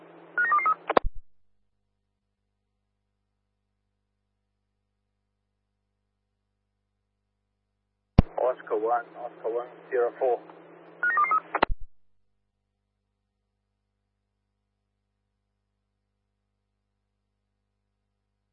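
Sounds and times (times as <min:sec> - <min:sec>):
electronic keypad-style beeps: 0:00.4 - 0:01.0, 0:11.0 - 0:11.8
voice talking over radio: 0:08.2 - 0:10.5
crackly radio transmission: 0:08.2 - 0:11.7
speech: 0:08.5 - 0:10.6.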